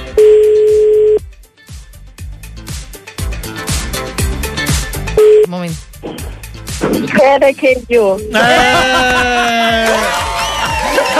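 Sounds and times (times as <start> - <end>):
punchy rhythmic drum-heavy music: 0.0 - 11.1
ringback tone on an outgoing phone call: 0.1 - 1.2, 5.2 - 5.5
speech: 7.0 - 10.1
laughter: 8.3 - 11.1.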